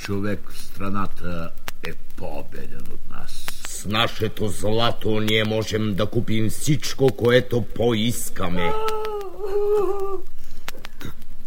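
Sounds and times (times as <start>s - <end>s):
speech: 0.1s - 10.4s
child crying and sobbing: 8.6s - 10.3s.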